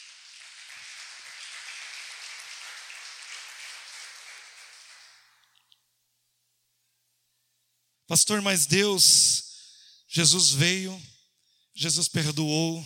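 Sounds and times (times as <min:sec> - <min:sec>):
church audience applauding during a sermon: 0:00.0 - 0:05.7
speech: 0:08.1 - 0:09.4, 0:10.1 - 0:11.2, 0:11.8 - 0:12.8.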